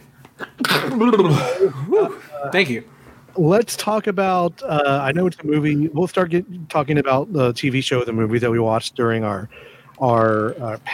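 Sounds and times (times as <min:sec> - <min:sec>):
person sneezing: 0:00.4 - 0:02.5
speech: 0:00.6 - 0:10.9.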